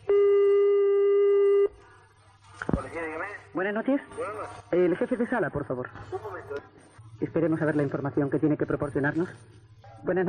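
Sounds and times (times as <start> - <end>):
telephone ringback tone from an unanswered call to the police: 0.1 - 1.7
speech: 3.6 - 10.2.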